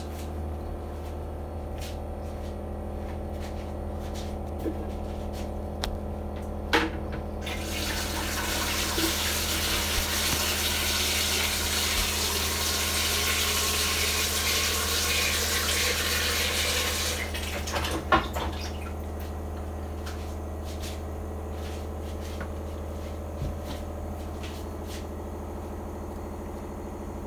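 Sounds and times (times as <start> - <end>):
low mechanical hum: 0.0 - 27.2
water poured into water filter tank: 7.4 - 19.2.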